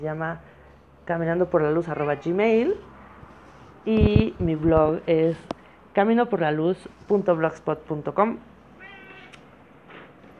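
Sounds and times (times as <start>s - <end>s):
speech: 0.0s - 2.9s, 3.8s - 8.5s
cat meowing: 8.8s - 9.4s.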